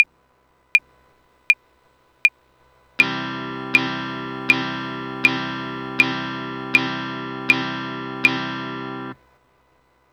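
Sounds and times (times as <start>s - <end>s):
guitar downstroke: 3.0s - 9.2s.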